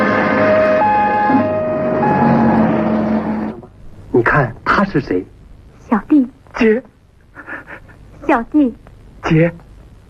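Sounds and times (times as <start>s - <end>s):
ambulance siren wailing: 0.2s - 3.6s
speech: 4.9s - 5.4s, 5.9s - 6.9s, 8.3s - 9.6s.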